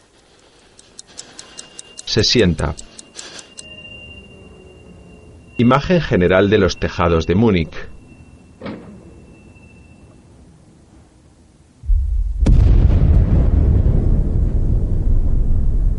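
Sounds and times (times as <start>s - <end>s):
speech: 2.1s - 2.9s, 5.6s - 7.9s
distant explosion: 11.8s - 15.9s.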